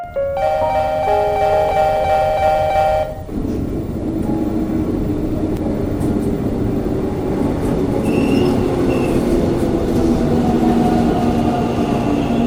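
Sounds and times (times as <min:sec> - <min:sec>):
subway train rumbling through an underground station in Montreal Canada: 0:00.1 - 0:12.4
faint high subway train wheel squeals: 0:08.0 - 0:09.3.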